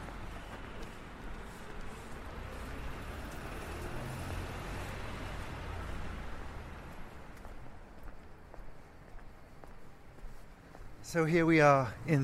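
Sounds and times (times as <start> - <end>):
footsteps: 0.0 - 11.5
roar of street traffic on St. James's Street: 0.0 - 12.2
speech: 11.1 - 12.2.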